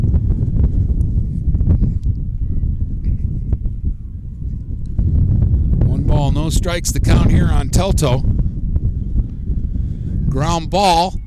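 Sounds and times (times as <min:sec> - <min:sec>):
gusty wind at a ball game buffeting the microphone: 0:00.0 - 0:11.2
speech: 0:06.3 - 0:08.3, 0:10.3 - 0:11.2.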